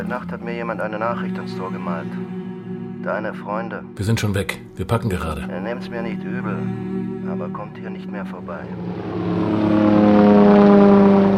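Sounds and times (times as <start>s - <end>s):
speech: 0.0s - 2.4s, 3.0s - 9.8s
airplane engine drone climbing over the Colombian jungle: 0.0s - 3.0s, 6.0s - 11.3s.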